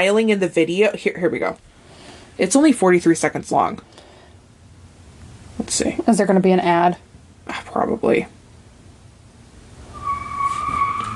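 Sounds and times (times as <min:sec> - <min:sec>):
speech: 0:00.0 - 0:01.7, 0:02.4 - 0:04.0, 0:05.6 - 0:08.4
low road rumble: 0:09.8 - 0:11.1
car tires skidding: 0:09.9 - 0:11.1.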